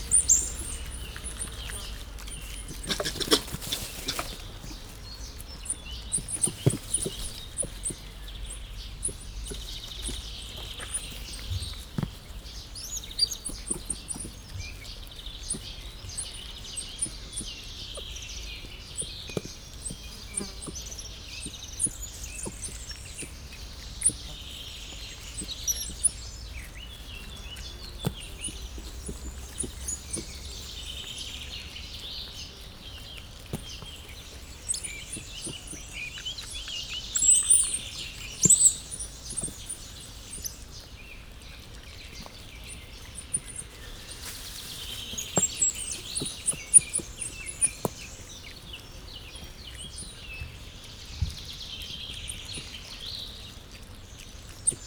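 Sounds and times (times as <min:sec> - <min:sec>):
sloth bear feeding sounds in a zoo: 0:00.0 - 0:54.8.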